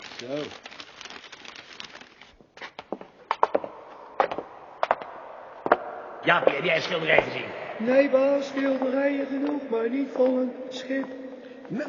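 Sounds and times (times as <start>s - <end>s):
old newspaper crinkling as a hat is wrapped: 0.0s - 2.8s
speech: 0.2s - 0.7s, 6.2s - 11.8s.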